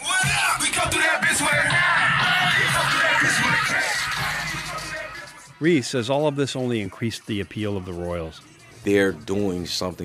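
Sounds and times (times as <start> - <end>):
packed club crowd shouting song lyrics in unison: 0.0 - 5.6
pounding club music: 0.0 - 8.6
speech: 5.6 - 10.0.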